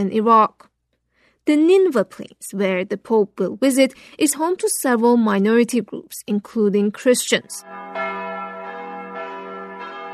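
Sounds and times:
speech: 0:00.0 - 0:00.7, 0:01.4 - 0:08.0
church bells chiming at a church in Mosul, northern Iraq: 0:07.6 - 0:10.1.

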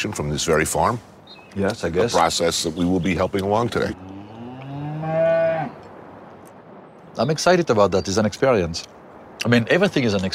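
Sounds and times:
speech: 0:00.0 - 0:04.2, 0:07.2 - 0:10.3
cow mooing on a dairy farm: 0:03.9 - 0:05.8.

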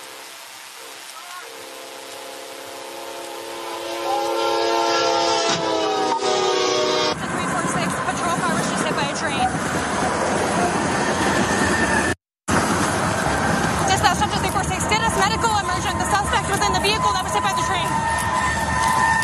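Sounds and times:
train horn blaring: 0:00.0 - 0:08.4, 0:15.1 - 0:19.2
heavy grinding roar of the train rushing past: 0:03.4 - 0:19.2.

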